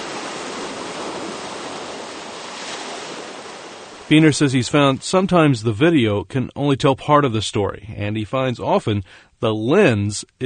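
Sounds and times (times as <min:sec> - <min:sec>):
surf waves washing against the shore: 0:00.0 - 0:05.5
speech: 0:04.1 - 0:10.4.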